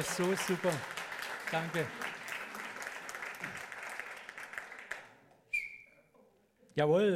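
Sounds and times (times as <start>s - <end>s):
speech: 0.0s - 2.0s, 6.8s - 7.1s
crowd applauding for the band: 0.0s - 5.3s
sharp whistle: 5.5s - 6.1s.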